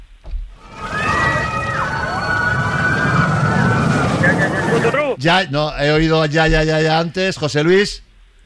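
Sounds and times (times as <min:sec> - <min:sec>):
high wavering squeals and cries: 0:00.6 - 0:05.0
roller coaster rumbling along its track: 0:00.6 - 0:05.2
speech: 0:05.2 - 0:08.1.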